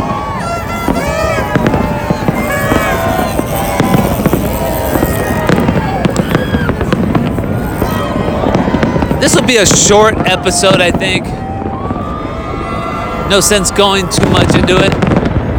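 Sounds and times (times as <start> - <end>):
New Year fireworks crackling and popping over a street: 0.0 - 15.5
murmur of a dense crowd along a closed street: 0.0 - 15.5
sharp bangs of fireworks: 0.0 - 15.5
speech: 9.2 - 11.4, 13.3 - 15.2.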